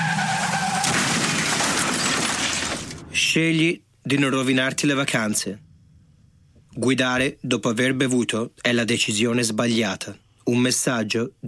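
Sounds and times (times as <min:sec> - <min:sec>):
car tires screeching: 0:00.0 - 0:02.9
car crash with debris: 0:00.0 - 0:03.6
speech: 0:03.2 - 0:05.7, 0:06.8 - 0:11.4.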